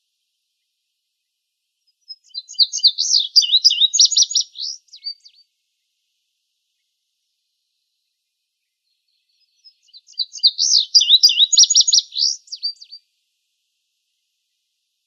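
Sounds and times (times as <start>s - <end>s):
indigo bunting singing in Arizona: 1.9s - 5.4s, 8.9s - 13.0s.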